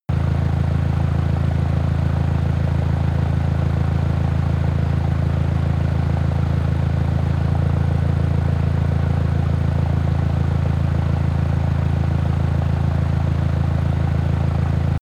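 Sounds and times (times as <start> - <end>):
engine idling slowly: 0.1 - 15.0.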